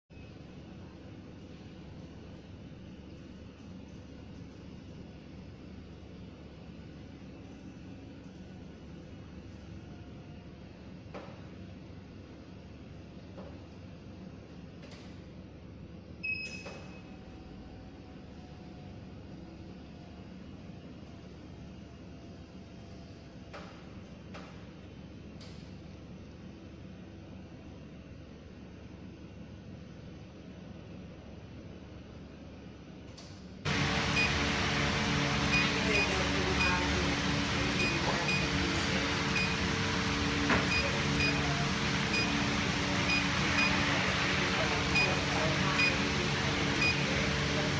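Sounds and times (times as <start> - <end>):
electric medical chair motor: 33.7 - 47.7.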